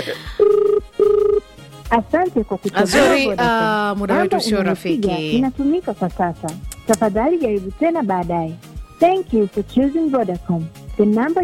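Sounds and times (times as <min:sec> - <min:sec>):
speech: 0:00.0 - 0:00.6, 0:01.9 - 0:11.4
warbling mid-pitched telephone ringback tone on an outgoing call: 0:00.4 - 0:01.5.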